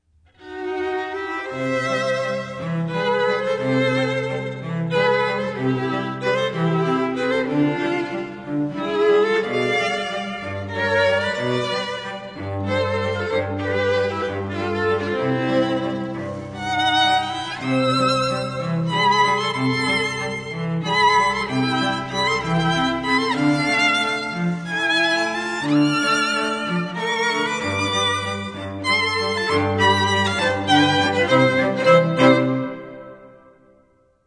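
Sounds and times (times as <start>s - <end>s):
string trio playing: 0.3s - 33.4s.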